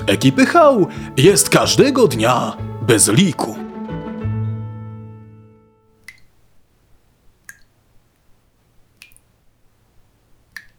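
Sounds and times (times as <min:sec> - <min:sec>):
sustained musical tone: 0:00.0 - 0:05.9
speech: 0:00.1 - 0:03.6
water dripping from a tap: 0:06.0 - 0:06.4, 0:07.4 - 0:07.8, 0:09.0 - 0:09.4, 0:10.4 - 0:10.7.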